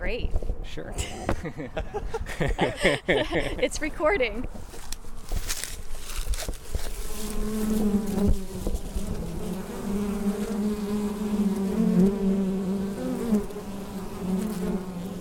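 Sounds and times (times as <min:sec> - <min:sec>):
speech: 0:00.1 - 0:04.8, 0:07.2 - 0:08.4
laughter: 0:01.0 - 0:03.7
honeybee foragers buzzing at the entrance of a hive: 0:06.6 - 0:15.1.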